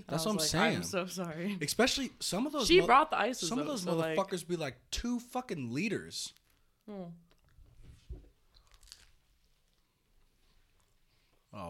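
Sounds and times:
speech: 0.1s - 7.2s
loud crunchy chewing: 8.5s - 9.9s.

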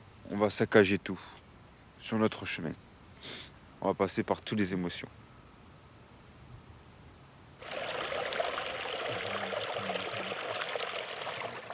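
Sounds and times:
speech: 0.3s - 1.4s, 2.0s - 5.2s
trickling stream of running water: 7.6s - 11.7s.

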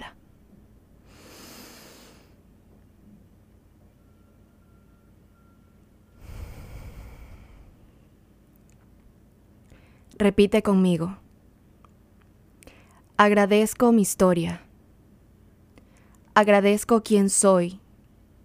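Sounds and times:
faint hum: 0.0s - 18.4s
slow airy deep breathing during a guided breathing exercise: 1.0s - 2.4s, 6.2s - 8.1s
speech: 10.1s - 11.2s, 13.2s - 14.6s, 16.4s - 17.8s.

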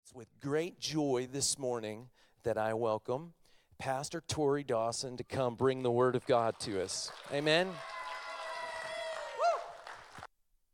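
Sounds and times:
speech: 0.1s - 8.0s
church service audience clapping: 6.0s - 10.3s
rising whoop or whistle: 7.8s - 10.1s.

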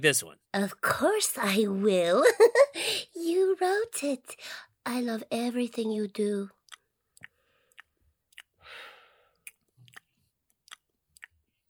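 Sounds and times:
speech: 0.0s - 6.6s
chewing popcorn: 6.6s - 8.6s, 9.3s - 11.6s.

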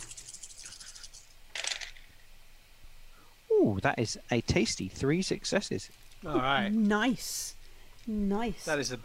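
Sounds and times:
dice clattering across a hard surface in a tabletop role-playing game roll: 0.0s - 2.1s
speech: 3.6s - 9.0s.

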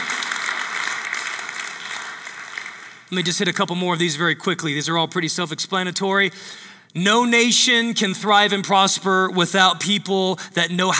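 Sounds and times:
crowd applauding: 0.0s - 4.7s
speech: 3.1s - 10.9s.

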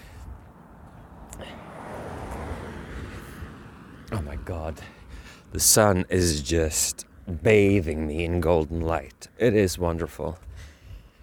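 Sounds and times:
car approaching while crossing a field: 0.0s - 8.9s
speech: 4.2s - 10.5s.

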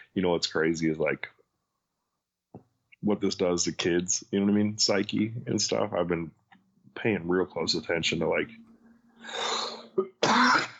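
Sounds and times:
speech: 0.2s - 1.4s, 3.0s - 6.4s, 7.0s - 10.7s
person clearing throat: 9.5s - 10.7s
person coughing: 9.7s - 10.7s.

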